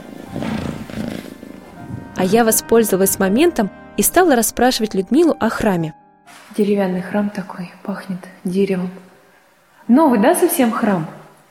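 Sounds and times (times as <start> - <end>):
cat purring: 0.0 - 3.6
speech: 2.2 - 9.1, 9.9 - 11.2.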